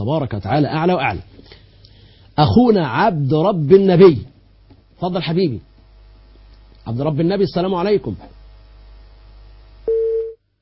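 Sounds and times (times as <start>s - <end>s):
speech: 0.0s - 1.6s, 2.4s - 4.3s, 5.0s - 5.7s, 6.9s - 8.4s
telephone tone after a dropped call: 9.9s - 10.4s.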